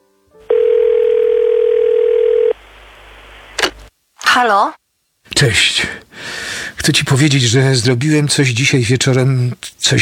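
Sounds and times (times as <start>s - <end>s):
telephone dial tone as a phone call is placed: 0.5s - 2.6s
speech: 4.4s - 10.0s.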